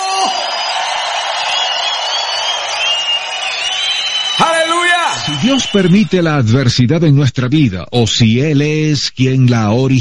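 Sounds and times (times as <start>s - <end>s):
large crowd shouting, cheering and whooping in jubilation: 0.0s - 6.4s
speech: 5.5s - 9.9s.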